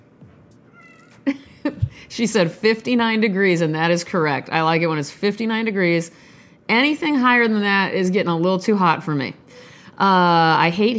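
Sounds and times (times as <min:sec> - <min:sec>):
cat meowing: 0:00.7 - 0:01.2
speech: 0:02.0 - 0:10.9.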